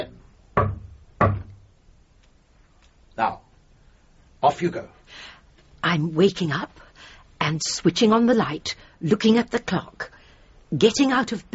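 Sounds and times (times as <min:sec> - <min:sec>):
banging on a communicating door: 0:00.6 - 0:01.7
speech: 0:03.2 - 0:03.4, 0:04.4 - 0:06.8, 0:07.4 - 0:11.5.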